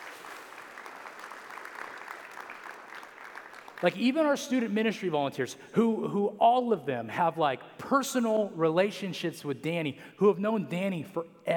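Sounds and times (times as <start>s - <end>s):
crowd clapping for volunteers: 0.0s - 4.2s
speech: 3.8s - 11.5s.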